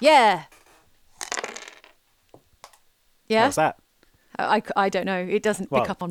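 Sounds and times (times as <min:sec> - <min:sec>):
speech: 0:00.0 - 0:00.5, 0:03.3 - 0:03.8, 0:04.4 - 0:06.0
handful of dice clattering onto a hard floor: 0:01.2 - 0:02.0.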